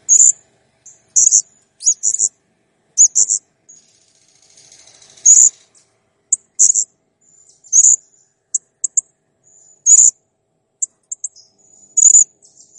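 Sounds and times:
Blue-crowned hanging parrot chirps: 0.0s - 2.3s, 3.0s - 5.6s, 6.3s - 10.2s, 10.8s - 12.7s.

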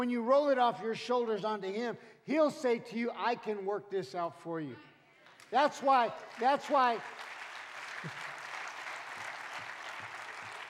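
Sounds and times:
speech: 0.0s - 4.9s, 5.5s - 7.3s
audience clapping during a sermon: 5.3s - 10.6s.

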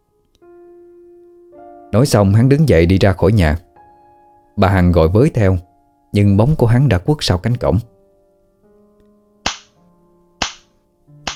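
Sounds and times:
speech: 1.9s - 3.6s, 4.6s - 7.9s
sharp slaps in a rented room: 9.4s - 9.8s, 10.4s - 11.3s.

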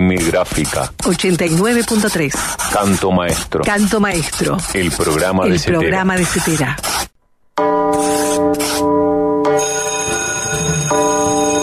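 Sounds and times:
speech: 0.2s - 7.7s
bell ringing: 7.6s - 11.6s.

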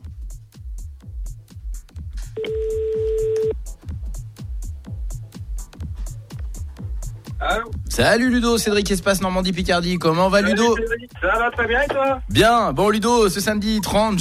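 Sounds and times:
loud rhythmic music bed: 0.0s - 14.1s
speech: 2.4s - 2.8s, 7.4s - 14.1s
telephone ringback tone: 2.4s - 3.6s.

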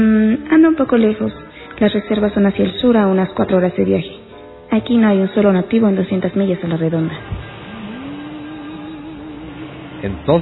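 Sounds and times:
speech: 0.0s - 7.4s, 10.0s - 10.4s
police car engine hum pulling into a cafe parking lot: 6.9s - 10.4s.

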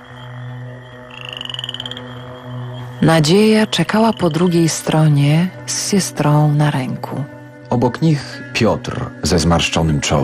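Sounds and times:
frogs croaking in a chorus on riverside meadows: 0.0s - 5.9s
speech: 3.0s - 10.2s.

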